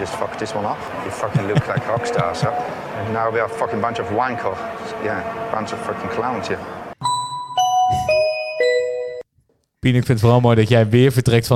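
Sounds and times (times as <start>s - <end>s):
laughter: 0.0s - 3.0s
speech: 0.0s - 6.8s, 9.8s - 11.5s
short jingle of four descending chime tones: 7.0s - 9.2s.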